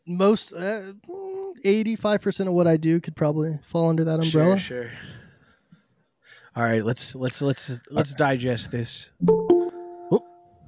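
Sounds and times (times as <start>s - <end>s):
speech: 0.1s - 5.2s, 6.6s - 9.5s
doorbell chiming ding dong: 9.2s - 10.5s.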